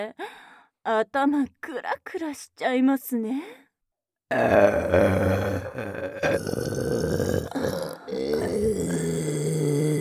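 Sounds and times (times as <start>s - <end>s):
speech: 0.0s - 3.6s, 4.3s - 7.2s
loud drawn-out burp: 4.3s - 9.9s.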